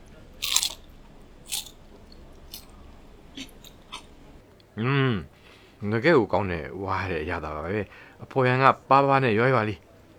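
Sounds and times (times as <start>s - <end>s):
biting into crispy fried food: 0.0s - 4.4s
speech: 4.8s - 9.8s.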